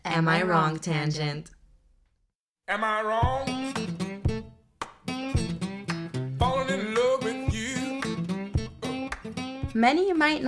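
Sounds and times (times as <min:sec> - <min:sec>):
speech: 0:00.2 - 0:01.6, 0:02.7 - 0:03.9, 0:09.8 - 0:10.4
blues tune led by plucked acoustic guitar melody: 0:03.2 - 0:10.4.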